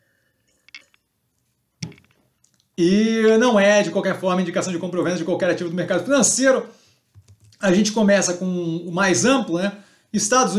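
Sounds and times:
person sipping a drink with a faint wet slurp: 0:00.3 - 0:01.1, 0:01.8 - 0:02.7
swallowing: 0:00.4 - 0:01.1
speech: 0:02.8 - 0:06.8, 0:07.6 - 0:10.5.

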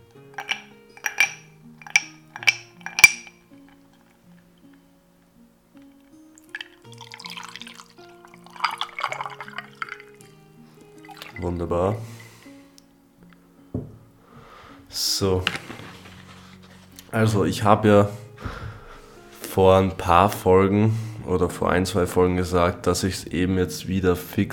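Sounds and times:
ice cubes dropping into a glass: 0:00.4 - 0:04.1, 0:06.5 - 0:10.2
iced tea poured into a glass with a bubbling trickling splash: 0:06.0 - 0:12.4
speech: 0:11.6 - 0:12.1, 0:15.2 - 0:15.7, 0:17.1 - 0:18.2, 0:19.6 - 0:24.5.

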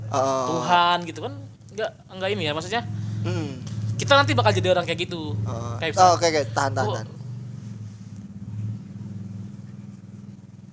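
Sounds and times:
motorcycle with loud exhaust passing by: 0:00.0 - 0:10.7
speech: 0:00.1 - 0:07.2.

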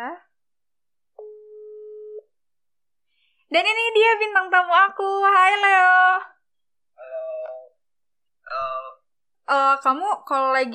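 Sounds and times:
telephone ringback tone: 0:01.2 - 0:02.3
speech: 0:03.5 - 0:06.3, 0:09.5 - 0:10.7.

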